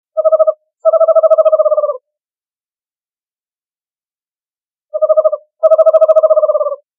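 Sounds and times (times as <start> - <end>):
screech owl: 0.2 - 2.1, 4.9 - 6.9.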